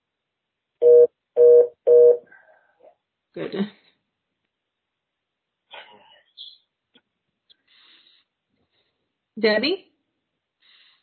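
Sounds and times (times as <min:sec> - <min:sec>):
electronic telephone dialing tones: 0:00.8 - 0:02.2
speech: 0:03.4 - 0:03.8, 0:09.4 - 0:09.9.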